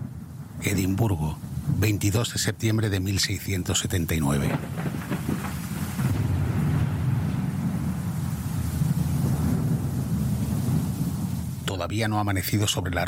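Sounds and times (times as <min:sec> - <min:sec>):
deep continuous rumble of thunder on a stormy night in Edinburgh: 0:00.0 - 0:11.9
rain-like hiss of a storm: 0:00.0 - 0:13.0
speech: 0:00.6 - 0:05.1, 0:11.9 - 0:13.0.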